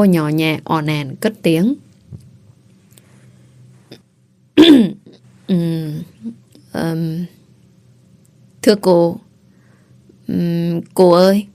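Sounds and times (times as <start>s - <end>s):
speech: 0.0s - 1.8s, 4.6s - 7.4s, 8.6s - 9.3s, 10.3s - 11.5s
young woman clearing her throat to test her voice: 4.6s - 5.2s.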